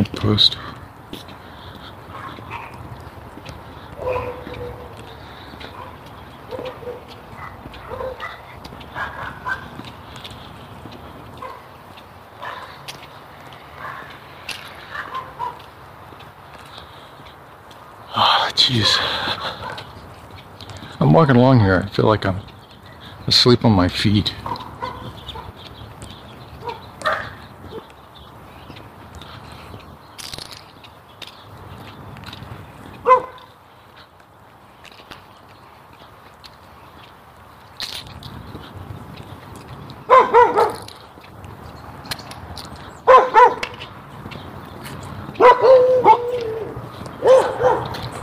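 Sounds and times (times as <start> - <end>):
speech: 0.2 - 1.2, 21.2 - 22.5, 23.3 - 24.5
backyard dogs barking: 1.5 - 16.2, 18.7 - 20.0, 24.3 - 25.8, 26.5 - 27.9, 32.8 - 33.6, 40.0 - 41.3, 43.0 - 43.9, 45.2 - 48.2.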